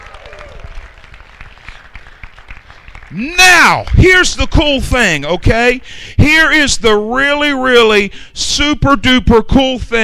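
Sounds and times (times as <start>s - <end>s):
crowd applauding: 0.0s - 4.5s
speech: 3.1s - 10.0s.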